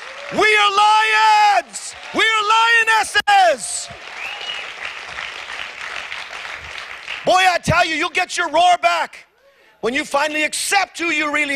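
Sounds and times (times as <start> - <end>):
church congregation applause during a sermon: 0.0 - 2.8, 3.7 - 7.3
speech: 0.3 - 4.2, 7.2 - 11.5.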